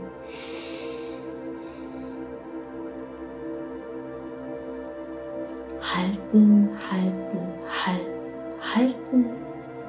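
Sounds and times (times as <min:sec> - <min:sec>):
steady tonal hum: 0:00.0 - 0:09.8
person inhaling deeply during a guided breathing exercise: 0:00.1 - 0:02.5
speech: 0:05.9 - 0:09.5.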